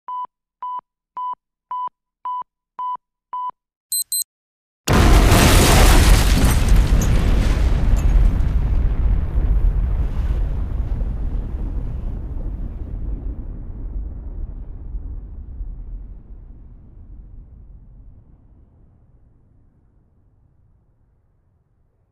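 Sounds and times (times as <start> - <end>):
bomb countdown beeps: 0.1 - 4.2
bomb explosion: 4.9 - 20.0.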